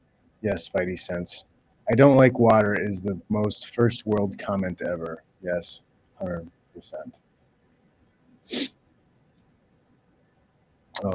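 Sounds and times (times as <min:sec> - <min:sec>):
speech: 0:00.4 - 0:07.3, 0:08.5 - 0:08.8
sharp human sneeze: 0:08.5 - 0:08.7.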